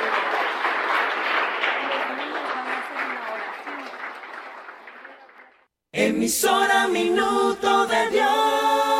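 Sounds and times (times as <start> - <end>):
sustained applause from a large crowd: 0.0 - 5.7
speech: 6.0 - 8.4.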